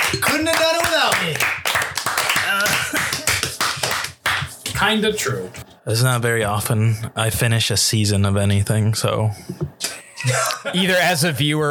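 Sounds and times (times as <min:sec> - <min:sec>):
small group of people applauding: 0:00.0 - 0:04.8
speech: 0:04.8 - 0:11.6.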